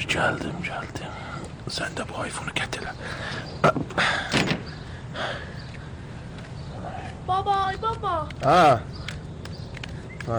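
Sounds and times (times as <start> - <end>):
speech: 0.0 - 4.5, 7.3 - 9.0
door being shut inside a home: 3.8 - 4.8.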